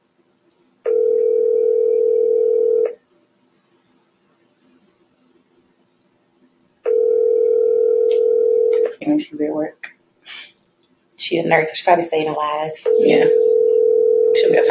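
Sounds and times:
ringback tone on a phone line while calling someone: 0:00.9 - 0:03.0, 0:06.9 - 0:08.9, 0:12.9 - 0:14.6
speech: 0:09.3 - 0:10.0, 0:11.3 - 0:13.6.

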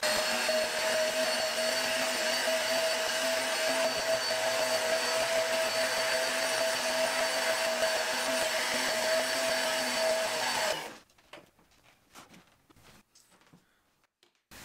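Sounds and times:
vacuum cleaner running over carpet: 0:00.0 - 0:11.0
quiet shuffling: 0:11.0 - 0:14.6.

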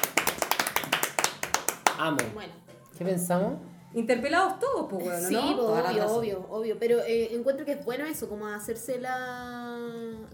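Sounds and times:
small group clapping: 0:00.0 - 0:02.4
speech: 0:02.0 - 0:09.6.

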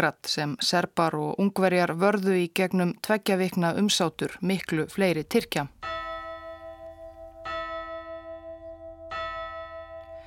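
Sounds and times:
speech: 0:00.0 - 0:05.8
large church bell tolling: 0:05.7 - 0:10.2.

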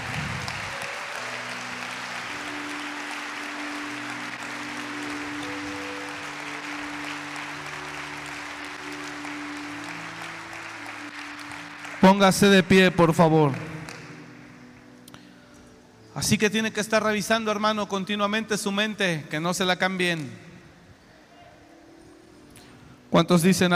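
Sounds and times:
audience applauding loudly: 0:00.0 - 0:14.8
speech: 0:12.0 - 0:13.7, 0:16.2 - 0:20.4, 0:23.2 - 0:23.7.

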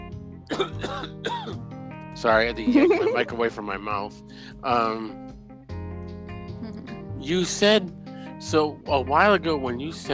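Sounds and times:
short coughs: 0:00.5 - 0:01.6
throat clearing: 0:00.5 - 0:01.6
speech: 0:00.5 - 0:05.4, 0:07.2 - 0:10.1
laughter: 0:02.7 - 0:03.5.

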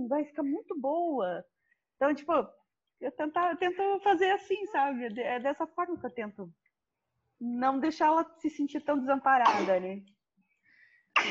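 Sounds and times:
speech: 0:00.1 - 0:06.6, 0:07.4 - 0:10.2
person sneezing: 0:09.5 - 0:09.8.

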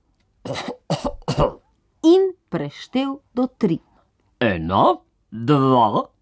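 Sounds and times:
person clearing throat: 0:00.4 - 0:01.7
speech: 0:00.5 - 0:06.1.

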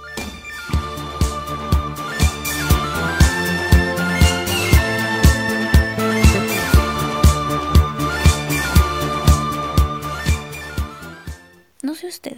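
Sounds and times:
original 1970s upbeat disco pop song with four-on-the-floor kick and synths: 0:00.7 - 0:11.0.

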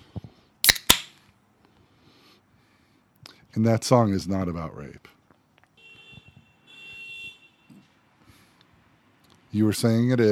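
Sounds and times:
speech: 0:03.6 - 0:05.2, 0:09.5 - 0:10.3
car horns honking outside on the street: 0:05.8 - 0:07.8.

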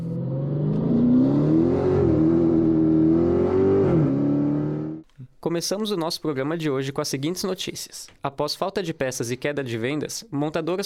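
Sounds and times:
car engine revving in a podcast intro sting: 0:00.0 - 0:05.0
speech: 0:05.6 - 0:10.8.

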